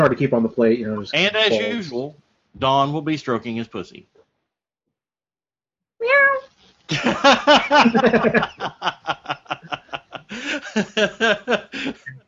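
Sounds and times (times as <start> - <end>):
speech: 0.0 - 4.2, 6.9 - 12.2
cat meow: 6.0 - 6.5
snickering and chuckling laughter: 6.9 - 12.1.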